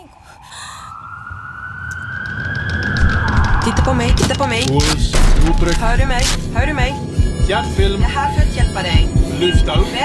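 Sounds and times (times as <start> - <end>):
ambulance siren wailing: 0.0 - 6.3
low rumbling background: 1.9 - 9.9
speech: 3.6 - 10.0.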